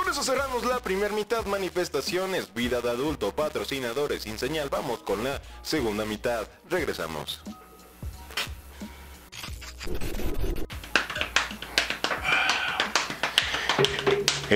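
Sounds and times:
speech: 0:00.1 - 0:07.6, 0:09.9 - 0:10.4
rustling scrapes: 0:09.3 - 0:10.7
scratchy brushing strokes by hand: 0:09.6 - 0:10.7
hand taps playing an improvised jazz rhythm: 0:10.7 - 0:14.5.

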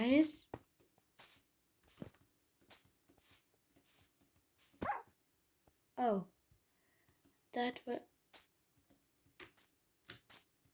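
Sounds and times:
speech: 0:00.0 - 0:00.6, 0:06.0 - 0:06.3, 0:07.6 - 0:08.1
dog barking sharply: 0:04.8 - 0:05.2.

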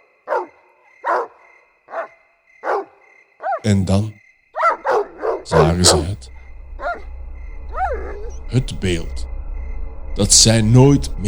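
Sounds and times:
dog on a leash barking: 0:00.2 - 0:03.7, 0:04.6 - 0:06.2
speech: 0:03.6 - 0:04.2, 0:05.5 - 0:06.4, 0:08.5 - 0:09.3, 0:10.2 - 0:11.2.

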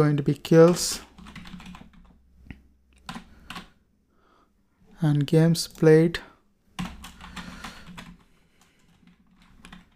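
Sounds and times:
speech: 0:00.0 - 0:01.1, 0:05.0 - 0:06.3
typing on a computer keyboard: 0:00.7 - 0:02.2, 0:03.0 - 0:03.7, 0:06.8 - 0:09.9.

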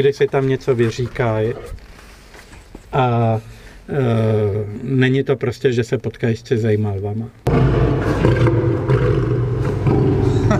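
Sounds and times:
speech: 0:00.0 - 0:01.9, 0:02.9 - 0:08.6
lion roaring: 0:01.3 - 0:01.8, 0:07.5 - 0:10.5.

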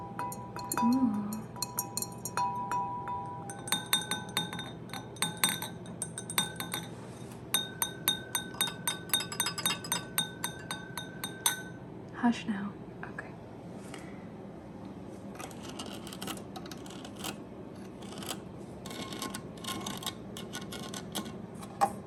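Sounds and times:
Christmas cups clinking together at a bar: 0:00.0 - 0:11.8
steady low hum: 0:00.0 - 0:22.0
speech: 0:00.8 - 0:01.3, 0:12.2 - 0:12.8.

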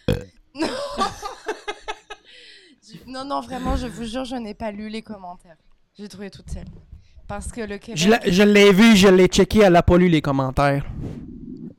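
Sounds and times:
loud drawn-out burp: 0:00.0 - 0:00.3
short bursts of laughter: 0:00.6 - 0:02.3
speech: 0:03.2 - 0:11.2.

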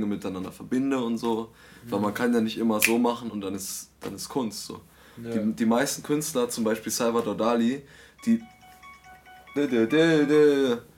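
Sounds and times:
speech: 0:00.0 - 0:08.5, 0:09.6 - 0:10.9
phone ringtone playing a voice-like buzzy note: 0:08.2 - 0:10.8.

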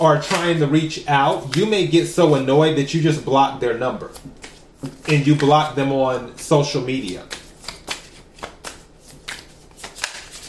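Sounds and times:
speech: 0:00.0 - 0:07.4
deck of tarot cards being shuffled: 0:00.2 - 0:00.6, 0:01.2 - 0:02.5, 0:04.0 - 0:10.4.

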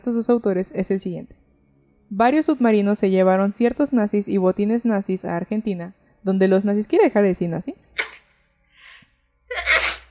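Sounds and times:
speech: 0:00.0 - 0:01.4, 0:02.1 - 0:08.0
person sneezing: 0:08.0 - 0:08.2, 0:09.5 - 0:10.0.

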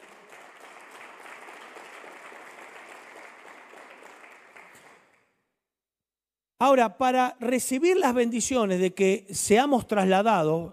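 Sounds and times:
full room of audience applauding: 0:00.0 - 0:05.3
speech: 0:06.6 - 0:10.7.

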